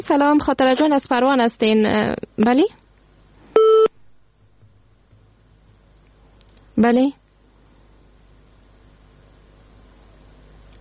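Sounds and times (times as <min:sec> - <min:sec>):
speech: 0:00.0 - 0:02.8, 0:06.8 - 0:07.2
telephone busy tone beep after a call drops: 0:03.6 - 0:03.9.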